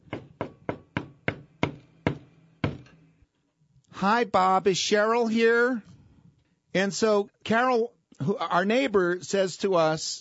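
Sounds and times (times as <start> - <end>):
neighbor knocking on a door: 0.0 - 2.9
speech: 4.0 - 5.9, 6.8 - 10.1.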